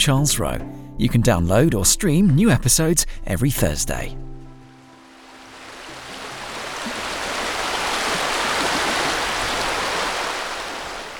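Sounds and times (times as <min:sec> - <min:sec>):
speech: 0:00.0 - 0:04.3
river water gushing and babbling: 0:04.7 - 0:11.1.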